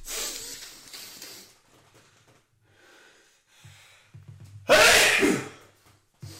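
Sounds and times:
quick breathing: 0.0 - 4.3
single loud sneeze: 4.7 - 5.6.

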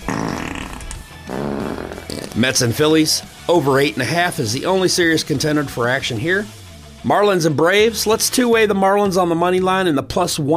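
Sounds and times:
loud wet fart with sputtering buzzy texture: 0.0 - 2.5
speech: 2.4 - 10.5.

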